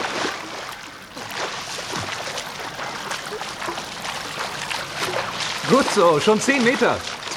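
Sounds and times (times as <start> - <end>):
swimming splashes in a pool: 0.0 - 7.3
speech: 5.7 - 7.2.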